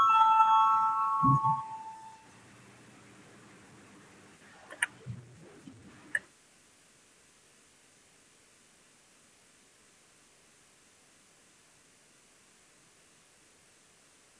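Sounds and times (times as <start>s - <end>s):
parliamentary voting bell ringing with bright electronic tone: 0.0s - 2.2s.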